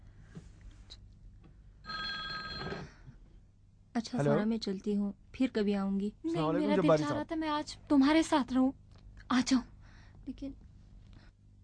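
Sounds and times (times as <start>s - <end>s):
telephone bell ringing: 1.8s - 3.1s
speech: 4.0s - 9.7s, 10.3s - 10.6s.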